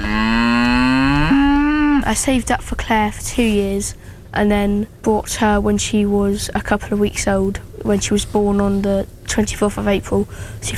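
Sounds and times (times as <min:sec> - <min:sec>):
cow mooing: 0:00.0 - 0:02.1
speech: 0:02.1 - 0:10.7.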